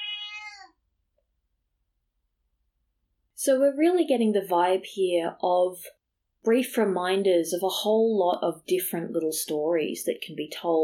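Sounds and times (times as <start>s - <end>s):
single domestic house cat meowing: 0.0s - 0.8s
speech: 3.4s - 10.8s.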